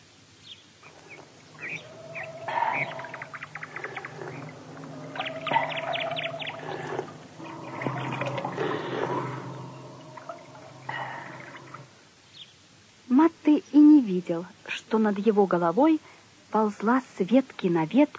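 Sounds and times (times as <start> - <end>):
bird-like calls: 0.8 - 12.5
spring of clean water flowing and pouring: 0.9 - 12.2
speech: 14.1 - 18.1.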